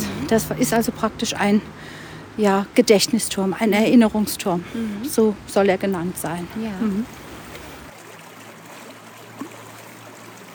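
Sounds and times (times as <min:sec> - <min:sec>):
low hum: 0:00.0 - 0:07.9
brook splashing through a castle courtyard: 0:00.0 - 0:10.5
speech: 0:00.3 - 0:07.2.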